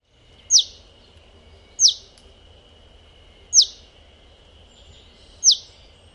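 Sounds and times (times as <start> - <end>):
faint steady high hum: 0.0 - 6.1
russet sparrow Passer rutilans rutilans giving sharp piercing descending notes in Japan: 0.4 - 0.9, 1.7 - 2.2, 3.5 - 3.9, 4.8 - 6.1.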